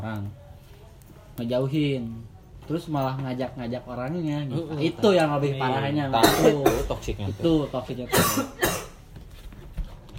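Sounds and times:
speech: 0.0s - 0.4s, 1.4s - 8.7s
person coughing sharply: 6.2s - 7.0s, 8.1s - 9.0s.

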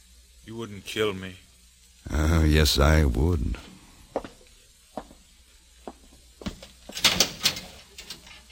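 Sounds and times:
speech: 0.5s - 3.7s
heavy metal cell door opening with clanks and knocks: 7.0s - 8.5s.

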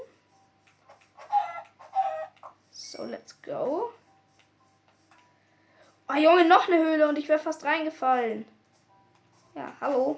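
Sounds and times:
chickens clucking: 0.8s - 2.6s
speech: 2.9s - 4.0s, 6.1s - 8.6s, 9.6s - 10.1s.

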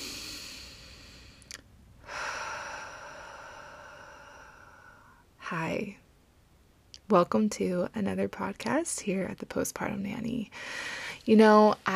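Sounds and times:
deep breath: 0.0s - 5.3s, 10.5s - 11.2s
speech: 5.5s - 6.0s, 7.1s - 11.9s.

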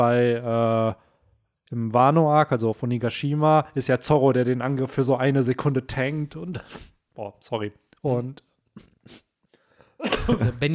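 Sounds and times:
speech: 0.0s - 1.1s, 1.7s - 9.2s, 10.0s - 10.7s
person coughing: 10.0s - 10.6s.

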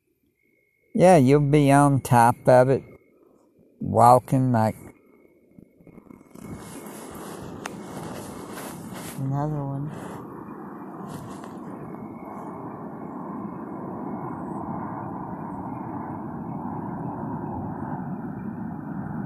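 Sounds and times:
speech: 0.9s - 2.9s, 3.8s - 4.8s, 9.2s - 10.0s
airplane flying overhead: 1.0s - 3.1s, 6.0s - 19.2s.

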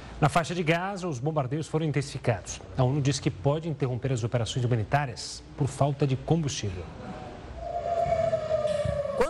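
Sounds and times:
speech: 0.2s - 7.2s
air raid warning siren wailing in Tel Aviv Israel during a rocket attack: 7.6s - 9.2s.

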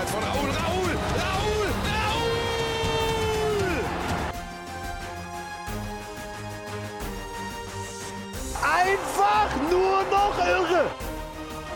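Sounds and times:
football stadium crowd roaring and cheering: 0.1s - 4.4s, 8.5s - 11.2s.

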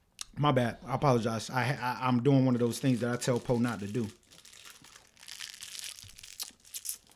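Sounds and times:
speech: 0.4s - 4.2s
thin gum wrapper crinkling while being unwrapped at a microphone: 2.6s - 7.1s.

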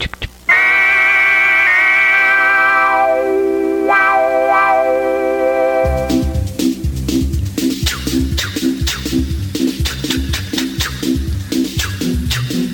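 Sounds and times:
train whistle blasts: 0.5s - 6.6s
train rhythmic chugging: 0.5s - 12.7s.

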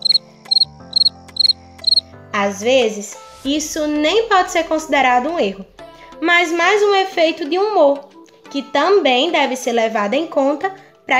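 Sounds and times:
cricket chirping: 0.0s - 2.0s
speech: 2.4s - 11.1s.

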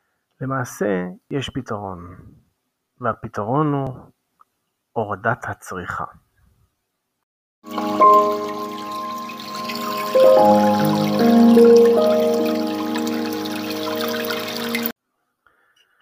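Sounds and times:
speech: 0.4s - 2.4s, 3.0s - 4.2s, 5.0s - 6.2s, 10.2s - 12.1s
water running from a tap or pipe: 7.6s - 14.9s.

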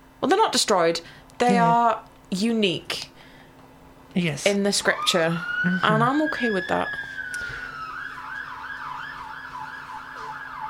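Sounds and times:
speech: 0.2s - 3.1s, 4.2s - 7.1s
emergency siren wailing outside: 4.8s - 10.6s.

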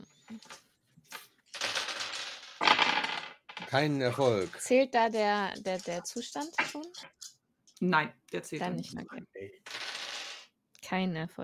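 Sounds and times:
dice clattering and rattling across a hard surface: 1.5s - 7.3s, 9.7s - 10.5s
speech: 3.7s - 9.6s, 10.9s - 11.4s.

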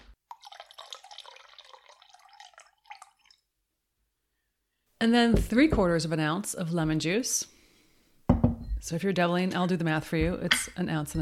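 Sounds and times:
raspberry liqueur pouring for a cocktail: 0.0s - 3.5s
speech: 5.0s - 7.5s, 8.9s - 11.1s.

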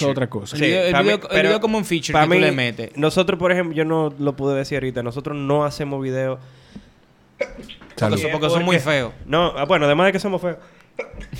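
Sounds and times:
speech: 0.0s - 6.6s, 7.4s - 11.3s
sneeze: 7.4s - 8.0s.

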